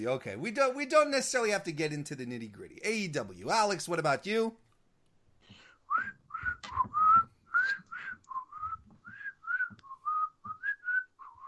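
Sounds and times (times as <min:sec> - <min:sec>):
speech: 0:00.0 - 0:04.6
person whistling a tune: 0:05.9 - 0:11.4.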